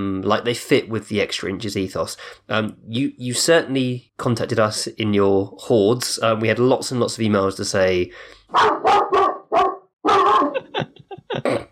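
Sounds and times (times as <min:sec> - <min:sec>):
speech: 0:00.0 - 0:09.1
dog barking and yapping: 0:08.5 - 0:10.6
laughter: 0:10.2 - 0:11.6.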